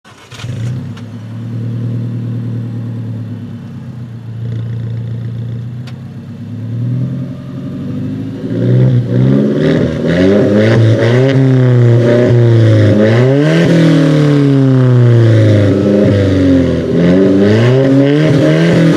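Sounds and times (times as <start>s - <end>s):
Alfa Romeo 4C engine starting: 0.0s - 18.9s.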